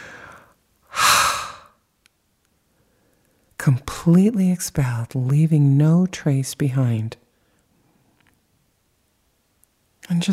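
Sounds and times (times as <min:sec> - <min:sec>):
deep forceful breaths during a relaxation exercise: 0:00.0 - 0:01.8
speech: 0:03.6 - 0:07.2, 0:10.1 - 0:10.3.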